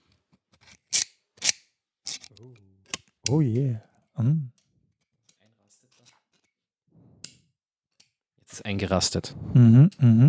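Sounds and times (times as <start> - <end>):
Knipex Cobra adjustable pliers clicking as adjusted with a push-button: 0.6 - 3.4
speech: 2.4 - 4.6, 8.6 - 10.2.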